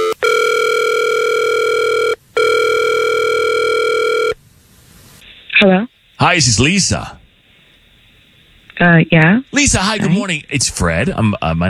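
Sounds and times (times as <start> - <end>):
electronic telephone ringback tones: 0.0 - 4.4
speech: 5.6 - 7.2, 8.8 - 11.6.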